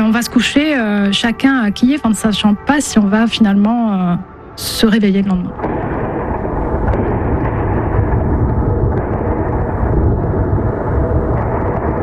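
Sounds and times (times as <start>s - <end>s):
speech: 0.1s - 5.9s
rumble of air-defense explosions intercepting drones or missiles in Kyiv Ukraine: 5.5s - 12.0s.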